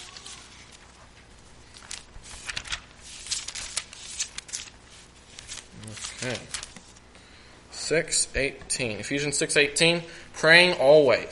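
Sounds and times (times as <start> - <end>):
thin Bible pages rustling and flipping: 0.0 - 7.1
speech: 6.2 - 6.5, 7.9 - 11.3.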